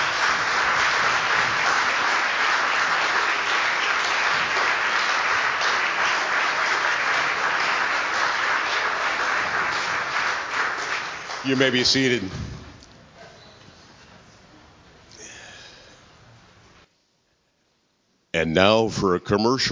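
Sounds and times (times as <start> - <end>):
church audience applauding: 0.0 - 12.3
speech: 11.5 - 12.6, 18.4 - 19.6.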